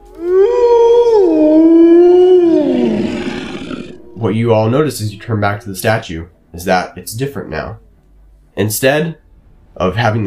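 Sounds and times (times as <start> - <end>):
wolves howling: 0.3 - 5.9
speech: 4.3 - 7.8, 8.6 - 9.2, 9.8 - 10.2.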